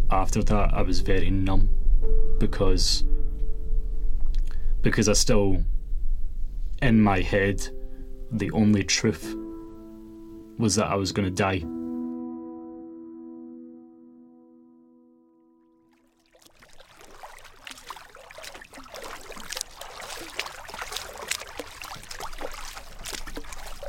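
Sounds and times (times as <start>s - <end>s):
steady low tones: 0.0s - 10.4s
speech: 0.1s - 3.1s, 4.8s - 5.7s, 6.8s - 9.4s, 10.6s - 11.8s
paddle splashing and dribbling water from a boat at night: 15.9s - 23.8s.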